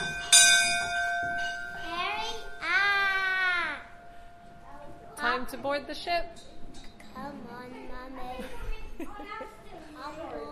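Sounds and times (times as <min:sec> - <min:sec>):
ship's bell struck: 0:00.0 - 0:06.2
speech: 0:05.5 - 0:10.5.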